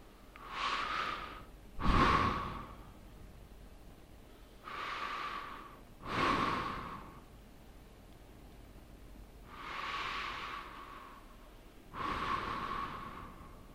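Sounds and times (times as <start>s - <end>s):
slow deep breaths: 0.0s - 3.0s, 4.2s - 7.3s, 9.4s - 13.7s.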